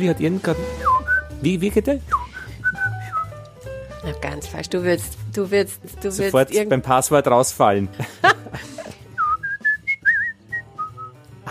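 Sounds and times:
speech: 0:00.0 - 0:02.2, 0:04.0 - 0:08.7
person whistling a family whistle with trill: 0:00.7 - 0:01.4, 0:02.1 - 0:03.4, 0:09.1 - 0:11.2
laughter: 0:07.9 - 0:09.1.

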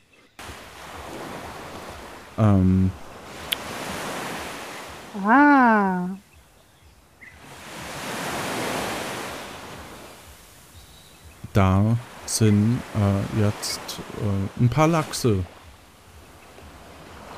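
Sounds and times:
water waves washing in slow rolling swells: 0:00.0 - 0:06.2, 0:07.3 - 0:17.3
person making short hesitant sounds: 0:02.4 - 0:03.0, 0:05.2 - 0:06.2
speech: 0:02.4 - 0:03.0, 0:05.2 - 0:06.2, 0:11.6 - 0:15.6.

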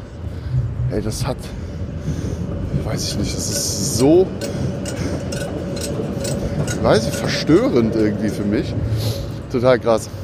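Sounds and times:
passing tram with heavy low rumble: 0:00.0 - 0:10.2
speech: 0:00.9 - 0:05.0, 0:06.8 - 0:10.2
sharp clacks of a passing tram: 0:02.8 - 0:08.7.

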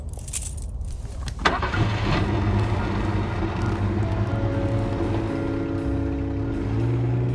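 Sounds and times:
faint jingle of keys: 0:00.0 - 0:01.0
new car engine starting and accelerating away: 0:01.4 - 0:07.3.

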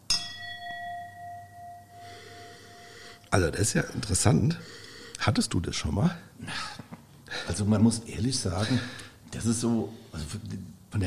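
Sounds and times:
wine glasses clinking in a toast during a wine tasting: 0:00.0 - 0:03.3
speech: 0:03.3 - 0:06.7, 0:07.4 - 0:11.0.

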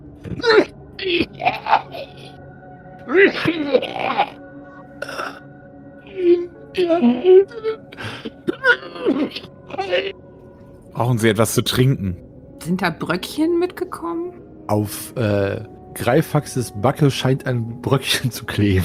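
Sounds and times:
acted coughing and groaning after inhaling fog: 0:00.2 - 0:02.4, 0:03.0 - 0:04.4, 0:05.0 - 0:10.2
speech: 0:00.3 - 0:02.1, 0:03.1 - 0:04.4, 0:06.2 - 0:10.1, 0:11.0 - 0:18.8.

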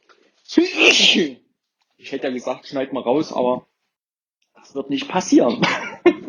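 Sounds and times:
speech: 0:00.5 - 0:01.4, 0:02.0 - 0:03.7, 0:04.6 - 0:05.9
person with hay fever or a slight cold sneezing: 0:00.7 - 0:01.3.

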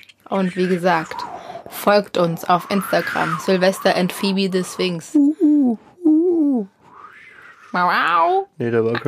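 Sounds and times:
speech: 0:00.0 - 0:05.9, 0:06.6 - 0:06.8, 0:07.7 - 0:09.0
owl hooting: 0:00.4 - 0:05.0, 0:07.0 - 0:08.2
faint rising whistle-like sound: 0:06.8 - 0:07.8.

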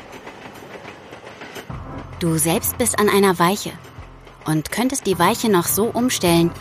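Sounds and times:
rhythmic clattering tram wheel clicks: 0:00.0 - 0:06.6
tram speeding along rails: 0:00.0 - 0:06.6
speech: 0:02.2 - 0:03.9, 0:04.5 - 0:06.6.

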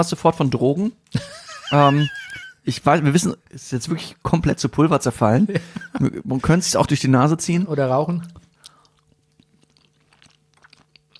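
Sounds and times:
speech: 0:00.0 - 0:08.4
laughter: 0:01.2 - 0:02.6
soft chewing of crumbly nutty halva-like food: 0:08.2 - 0:11.1.

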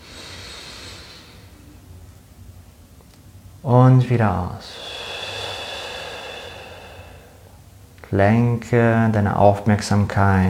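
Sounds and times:
slow deep breath drawn in through the nose in a guided relaxation exercise: 0:00.0 - 0:01.6, 0:04.7 - 0:07.6
speech: 0:03.6 - 0:04.9, 0:08.1 - 0:10.4.

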